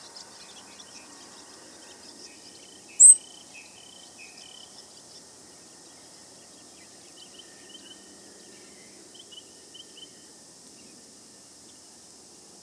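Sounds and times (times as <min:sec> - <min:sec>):
grasshopper sparrow song: 0:00.0 - 0:12.6
low background hiss: 0:00.0 - 0:12.6
faint high chips from other birds: 0:03.0 - 0:03.2.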